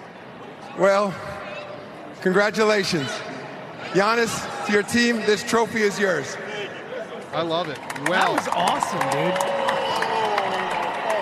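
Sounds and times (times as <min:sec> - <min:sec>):
speech: 0:00.8 - 0:01.3, 0:02.2 - 0:03.2, 0:03.9 - 0:06.5, 0:07.3 - 0:09.6
thin scattered crowd applause at trophy presentation: 0:07.4 - 0:11.2.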